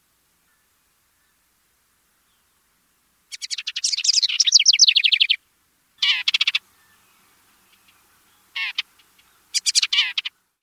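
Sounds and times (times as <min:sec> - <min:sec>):
House wren grating chatters: 0:03.3 - 0:05.4, 0:06.0 - 0:06.6, 0:07.7 - 0:10.3.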